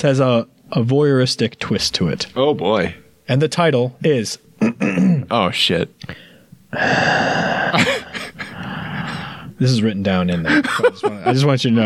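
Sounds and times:
speech: 0.0s - 8.1s, 9.6s - 11.8s
person doing exaggerated heavy breathing for comic effect: 6.1s - 9.6s, 10.4s - 11.0s
laughter: 7.8s - 8.8s, 10.3s - 11.7s.

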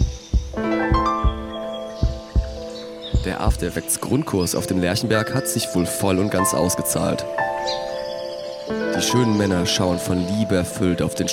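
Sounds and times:
deep heartbeat thumps in paired beats: 0.0s - 3.8s
speech: 3.2s - 7.9s, 9.0s - 11.3s.

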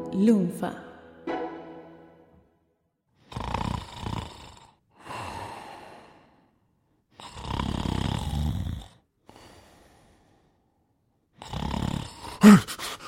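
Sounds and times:
speech: 0.2s - 0.9s, 12.5s - 12.8s
loud rasping snoring: 3.2s - 6.2s, 7.2s - 9.1s, 11.3s - 13.0s.

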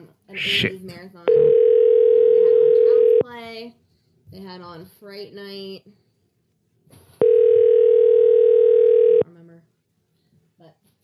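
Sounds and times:
speech: 0.3s - 2.0s, 3.4s - 6.0s
telephone ringing tone on a call: 1.3s - 3.2s, 7.2s - 9.2s.

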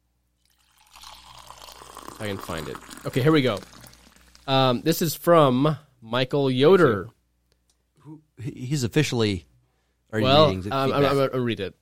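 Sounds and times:
coffee being poured into a cup: 0.4s - 5.0s
speech: 2.2s - 3.8s, 4.5s - 7.2s, 8.0s - 9.5s, 10.1s - 11.7s.

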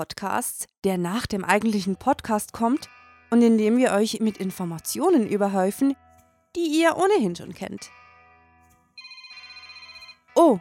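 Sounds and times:
speech: 0.0s - 8.0s, 10.4s - 10.5s
electronic phone ringtone: 9.0s - 10.5s.

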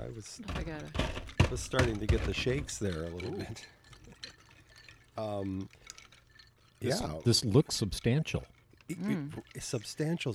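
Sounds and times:
drink pouring into a glass: 0.0s - 10.3s
speech: 0.1s - 3.8s, 5.2s - 5.8s, 6.8s - 10.3s.

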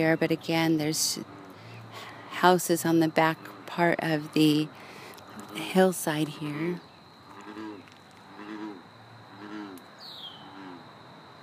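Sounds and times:
speech: 0.0s - 1.4s, 2.0s - 4.8s, 5.4s - 6.9s
frog croaking near a pond: 1.0s - 11.0s
bird chirp: 9.9s - 10.6s.

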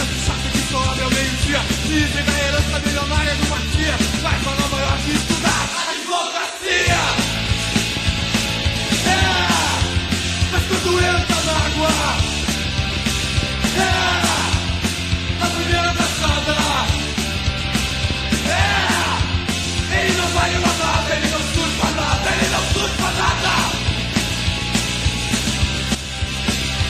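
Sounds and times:
distorted rock guitars: 0.0s - 26.8s
driving rock drums: 0.0s - 26.8s
raw shouted rock vocal: 5.2s - 7.3s, 9.0s - 12.2s, 13.6s - 14.8s, 18.4s - 23.9s.

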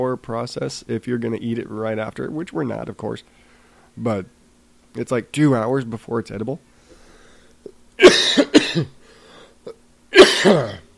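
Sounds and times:
speech: 0.0s - 3.4s, 4.0s - 6.7s, 8.1s - 9.0s, 10.4s - 10.8s
man's gasping breaths: 6.8s - 7.6s, 9.0s - 9.6s
man coughing from allergies: 8.0s - 9.0s, 9.6s - 10.9s.

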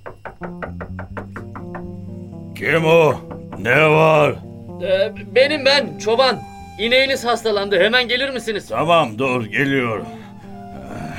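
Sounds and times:
knocking on a door: 0.0s - 2.2s, 2.8s - 4.0s
speech: 0.4s - 0.8s, 2.6s - 10.2s.

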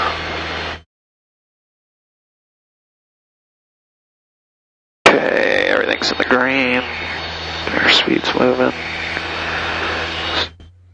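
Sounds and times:
160-horsepower Piper Warrior light aircraft engine climbing out in hot weather: 0.0s - 0.8s, 5.1s - 10.9s
speech: 6.0s - 9.3s.

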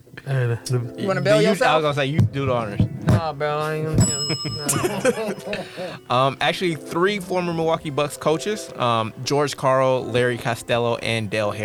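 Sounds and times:
speech: 0.5s - 11.6s
bright metallic bell ding: 3.9s - 6.3s
light chuckling: 4.0s - 6.1s.

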